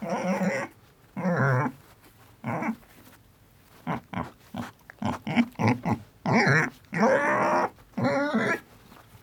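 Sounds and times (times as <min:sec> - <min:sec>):
pig: 0:00.0 - 0:01.8, 0:02.4 - 0:03.0, 0:03.7 - 0:08.7.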